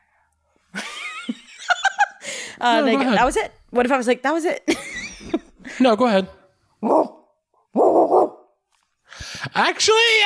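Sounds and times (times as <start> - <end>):
speech: 2.6 - 4.9, 5.8 - 7.2, 9.5 - 10.2
person imitating a big dog barking: 6.8 - 8.5.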